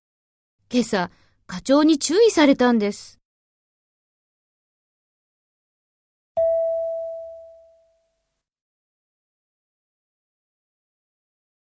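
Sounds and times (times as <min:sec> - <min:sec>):
speech: 0:00.7 - 0:03.2
single clear chime tone in a language training exercise: 0:06.4 - 0:08.1.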